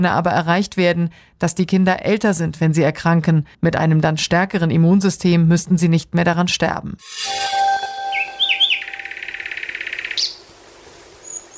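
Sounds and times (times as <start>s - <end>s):
speech: 0.0s - 7.7s
nightingale singing: 7.2s - 10.5s.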